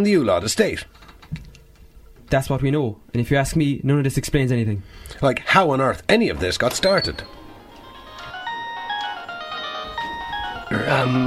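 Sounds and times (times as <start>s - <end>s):
speech: 0.0s - 1.4s, 2.3s - 7.4s, 10.7s - 11.2s
mobile phone ringing with an electronic melody: 6.9s - 11.2s.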